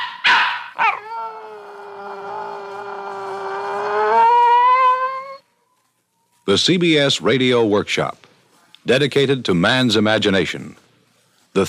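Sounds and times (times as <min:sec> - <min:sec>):
dog barking: 0:00.0 - 0:01.0
dog howling: 0:00.6 - 0:05.9
speech: 0:06.5 - 0:08.2, 0:08.8 - 0:10.8.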